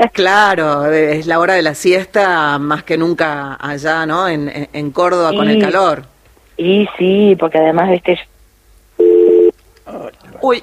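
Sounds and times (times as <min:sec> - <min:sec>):
speech: 0:00.0 - 0:08.3, 0:09.9 - 0:10.6
steady loud electronic telephone tone of a call connecting: 0:09.0 - 0:09.5.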